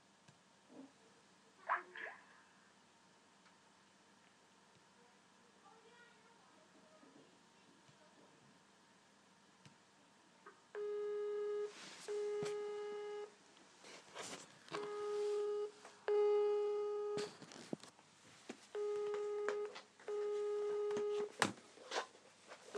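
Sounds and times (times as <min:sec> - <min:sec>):
telephone busy tone after caller hangs up: 0:10.8 - 0:13.3, 0:14.8 - 0:17.3, 0:18.8 - 0:21.4.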